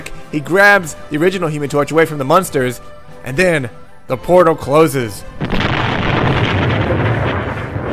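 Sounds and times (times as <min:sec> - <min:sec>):
speech: 0:00.3 - 0:05.7
big booming explosion: 0:05.4 - 0:07.9
crackling debris: 0:05.4 - 0:07.9.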